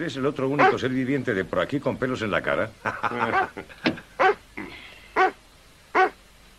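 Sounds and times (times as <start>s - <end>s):
speech: 0.0s - 4.3s
laughter: 2.8s - 4.1s
dog barking: 4.2s - 4.4s, 5.2s - 6.2s
dog whimpering yips: 5.2s - 5.4s, 6.0s - 6.2s.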